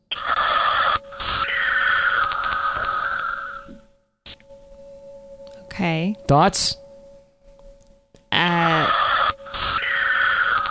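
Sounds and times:
electronic-sounding breathing in a voicemail message over a phone line: 0.1 - 4.4, 8.3 - 10.6
speech: 5.8 - 6.8.

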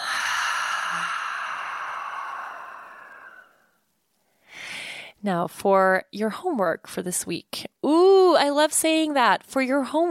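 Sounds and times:
deep breath out through the mouth during a guided breathing exercise: 0.0 - 3.8
speech: 5.2 - 10.1.

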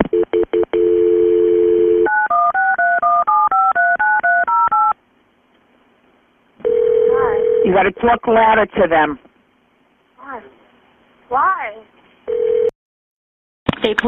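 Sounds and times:
steady telephone tone: 0.1 - 4.9, 6.6 - 7.7, 12.3 - 12.7
telephone keypad dialing tones as a 911 call is transferred to state police: 0.8 - 4.9
speech: 7.7 - 9.2, 13.8 - 14.0.

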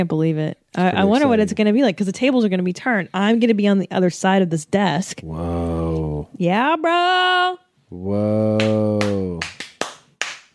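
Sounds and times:
speech: 0.0 - 9.5
sustained vocal tone: 1.0 - 1.6, 5.3 - 6.2, 7.9 - 9.4
hand claps: 8.6 - 10.5.

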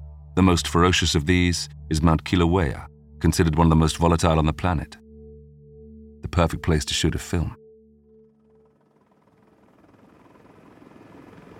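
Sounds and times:
speech: 0.4 - 5.0, 6.2 - 7.6
helicopter engine with turbine whine and rotor roar: 8.1 - 11.5.

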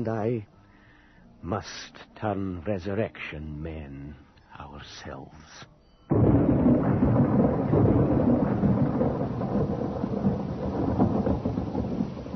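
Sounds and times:
speech: 0.0 - 0.6, 1.4 - 7.2
deep thunder rumbling and rolling: 6.1 - 12.3
heavy rain pouring at a rural graveyard: 6.1 - 12.3.

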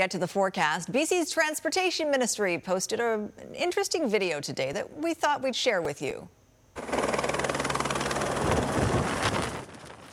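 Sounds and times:
speech: 0.0 - 7.0
helicopter rotor chopping during landing: 6.8 - 9.7
gusty wind buffeting the microphone: 8.1 - 10.1.

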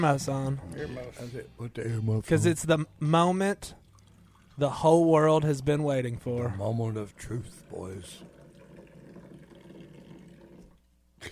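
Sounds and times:
speech: 0.0 - 3.8, 4.6 - 8.4
coffee poured from a height into a cup: 3.6 - 10.9.

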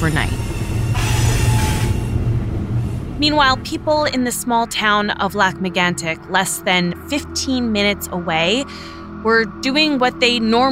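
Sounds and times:
speech: 0.0 - 0.4, 3.2 - 10.7
freight train of 72 tank cars carrying crude oil rolling along tracks: 0.0 - 6.2.

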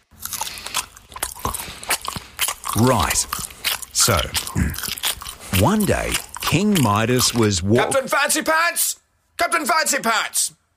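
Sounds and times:
wet mouth noises: 0.0 - 7.7
loud chewing and crunching: 0.0 - 8.4
speech: 2.8 - 3.4, 4.0 - 5.0, 5.6 - 10.6.

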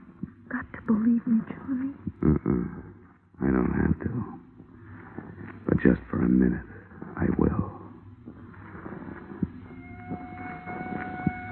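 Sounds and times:
low rumbling background: 0.0 - 11.5
speech: 0.6 - 4.4, 5.8 - 7.6
faint police sirens out in the country: 9.7 - 11.5.

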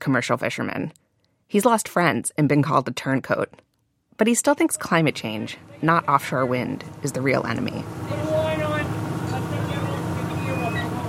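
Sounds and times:
speech: 0.0 - 8.1
indistinct voices: 4.2 - 11.0
squid fishing boat engine droning at sea near Montauk: 4.6 - 11.0
faint mechanical whine: 4.8 - 11.0.

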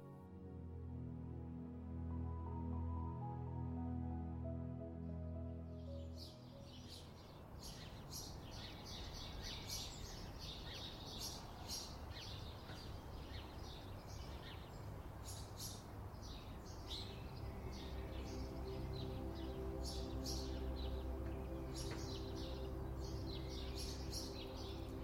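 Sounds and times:
steady sustained musical tone: 0.0 - 12.4, 16.2 - 25.0
soft outdoor hiss: 5.0 - 25.0
sparrows chirping and twittering in the early morning: 5.8 - 25.0.

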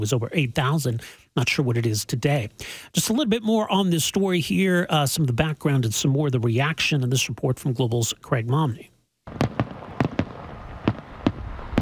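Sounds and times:
speech: 0.0 - 9.7
fireworks crackling rumble: 9.3 - 11.7
fireworks exploding with loud bangs: 9.3 - 11.7.

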